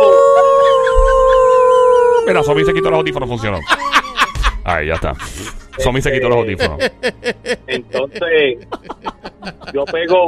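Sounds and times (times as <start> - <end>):
person imitating a dog howling: 0.0 - 3.3
laughter: 0.0 - 10.2
low thump: 1.0 - 1.4
speech: 2.3 - 3.8, 4.7 - 10.2.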